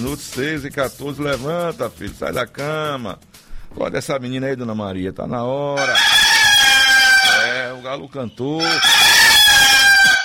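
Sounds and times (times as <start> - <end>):
speech: 0.0 - 6.2, 7.8 - 9.0
rooster crowing: 5.8 - 7.8, 8.6 - 10.2.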